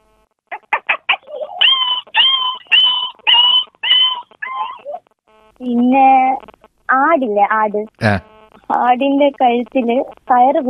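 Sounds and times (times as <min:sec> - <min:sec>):
human voice imitating a dog yelping after being hit by a stone: 0:00.5 - 0:05.0
speech: 0:05.6 - 0:06.5, 0:07.1 - 0:10.6.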